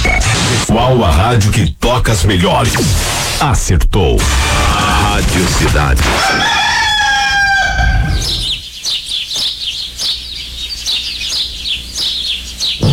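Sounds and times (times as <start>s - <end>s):
speech: 0.8s - 6.8s
other birds chirping and clucking: 6.1s - 12.9s
rooster crowing: 6.2s - 8.6s.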